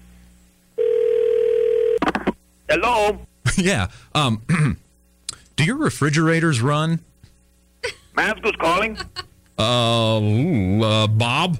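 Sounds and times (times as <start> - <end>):
telephone ringback tone during a phone call to a refrigeration business: 0.8 - 2.0
speech: 2.7 - 4.8, 5.6 - 7.1, 7.8 - 11.5.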